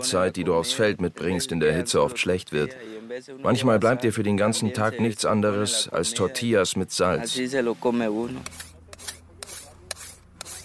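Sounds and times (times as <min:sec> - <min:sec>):
speech: 0:00.0 - 0:09.1
file sharpening a machete blade: 0:08.4 - 0:10.6.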